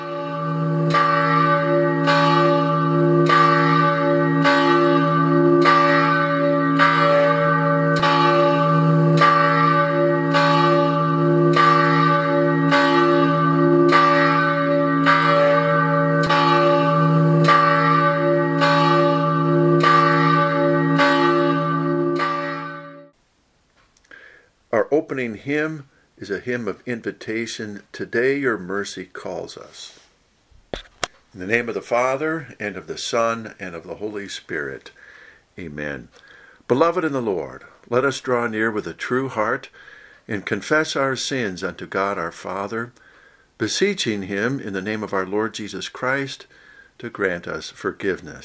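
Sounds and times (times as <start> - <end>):
church bell tolling: 0.0 - 23.2
speech: 25.2 - 30.0, 31.4 - 35.0, 35.6 - 43.0, 43.6 - 48.4.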